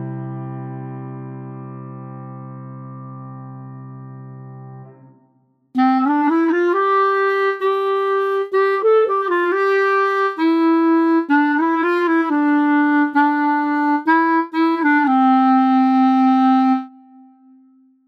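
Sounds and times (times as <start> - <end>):
clarinet in C major: 5.8 - 17.8.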